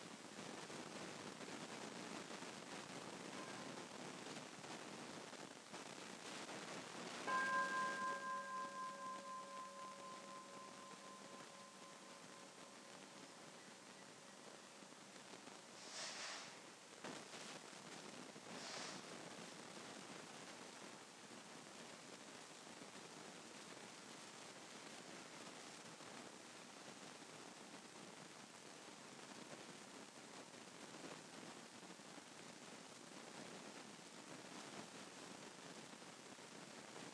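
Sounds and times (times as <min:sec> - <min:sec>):
soft steady wash of noise: 0:00.0 - 0:37.1
meditation bell struck and ringing out: 0:07.3 - 0:13.6.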